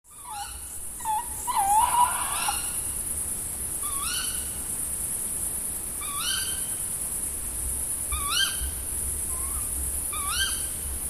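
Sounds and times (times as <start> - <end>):
tawny owl giving wavering slurred calls: 0.1 - 2.9, 3.8 - 4.5, 6.0 - 6.7, 8.2 - 10.8
steady background hiss: 0.1 - 11.0.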